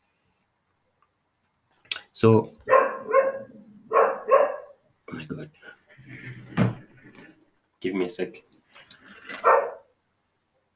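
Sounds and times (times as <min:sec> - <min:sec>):
speech: 0:02.2 - 0:02.6, 0:05.3 - 0:06.6, 0:07.8 - 0:08.5
dog barking: 0:02.7 - 0:04.8, 0:09.4 - 0:09.9.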